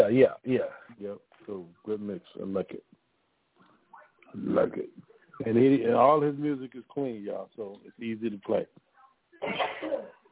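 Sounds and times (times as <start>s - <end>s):
speech: 0.0s - 2.8s, 5.5s - 8.8s
person sneezing: 9.4s - 10.2s.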